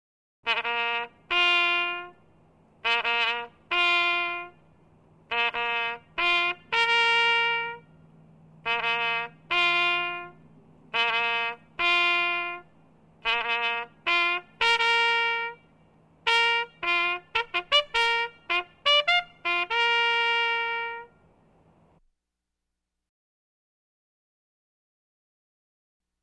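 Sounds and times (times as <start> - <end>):
trumpet bugle call: 0.5 - 4.7, 5.3 - 8.0, 8.6 - 21.3.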